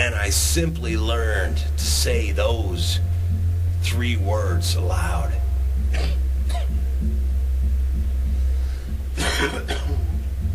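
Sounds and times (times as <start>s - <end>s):
low steady hum: 0.0s - 10.5s
speech: 0.3s - 6.2s
voice imitating a harsh phlegmy smoker's cough: 6.0s - 6.7s, 9.2s - 10.1s.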